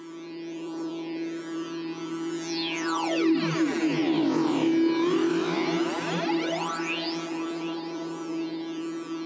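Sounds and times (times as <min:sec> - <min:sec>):
sustained droning synthesizer tone: 0:00.9 - 0:09.2
tweaked synthesizer intro part: 0:03.0 - 0:09.2.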